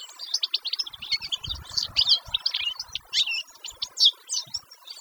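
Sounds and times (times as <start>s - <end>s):
canary singing: 0.4s - 4.1s.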